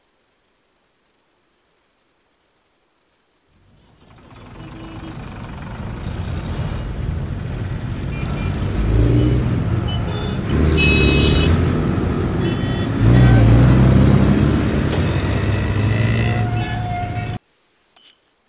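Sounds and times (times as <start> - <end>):
motorcycle engine revving on a road: 6.1 - 17.3.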